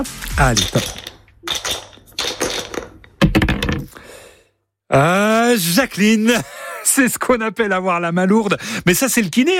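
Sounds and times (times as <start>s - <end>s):
speech: 0.0s - 1.0s, 4.9s - 9.5s
dice clattering across a hard surface: 0.6s - 3.9s.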